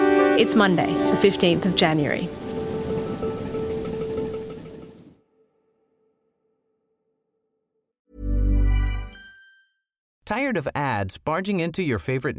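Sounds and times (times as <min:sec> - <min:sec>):
heavy rain falling on surfaces: 0:00.0 - 0:05.1
speech: 0:00.4 - 0:02.4, 0:10.3 - 0:12.3.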